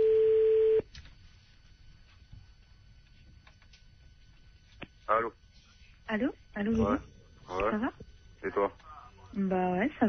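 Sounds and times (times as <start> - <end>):
telephone ringback tone on an outgoing call: 0.0 - 0.8
speech: 6.1 - 10.0.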